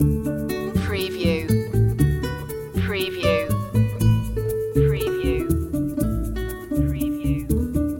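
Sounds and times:
Spanish guitars loop: 0:00.0 - 0:07.9.

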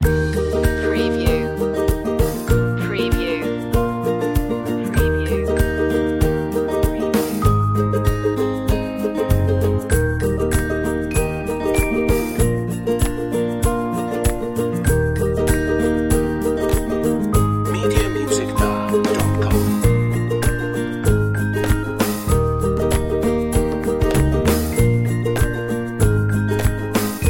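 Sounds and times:
gentle ukulele commercial music: 0:00.0 - 0:27.2.

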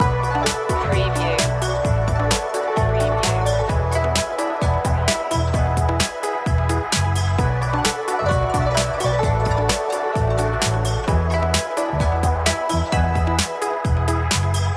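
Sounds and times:
music loop: 0:00.0 - 0:14.7.

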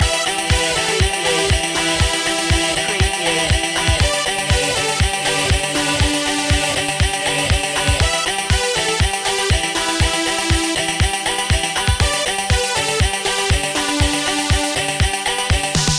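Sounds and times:
dubstep gamer loop: 0:00.0 - 0:15.9.

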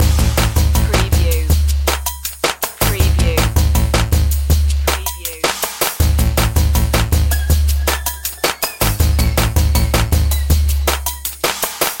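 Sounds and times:
eastern pulses loop: 0:00.0 - 0:11.7.

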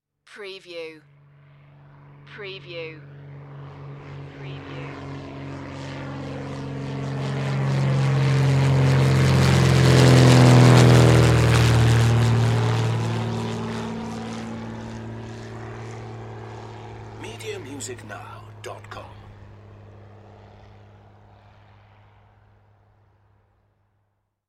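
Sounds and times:
propeller airplane: 0:01.0 - 0:24.3.

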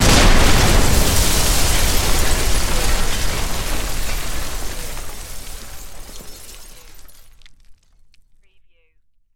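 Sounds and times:
building explosion: 0:00.0 - 0:06.7.

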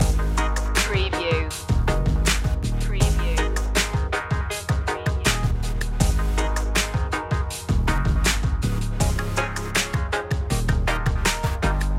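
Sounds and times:
bold attitude music loop: 0:00.0 - 0:11.9.

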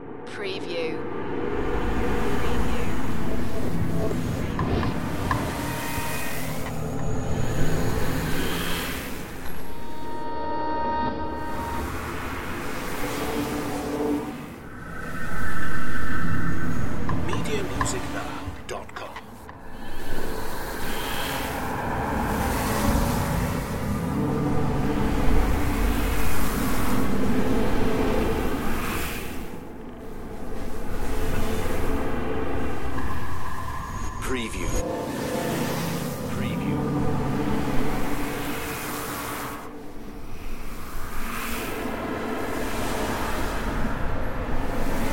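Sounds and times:
dimension glitches ambience loop: 0:00.0 - 0:45.1.

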